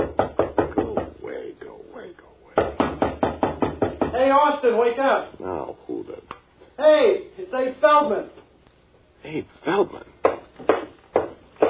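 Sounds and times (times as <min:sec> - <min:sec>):
loud rapid knocking on a door: 0:00.0 - 0:01.2, 0:02.6 - 0:04.5, 0:10.2 - 0:11.6
speech: 0:04.3 - 0:08.4, 0:09.2 - 0:10.1.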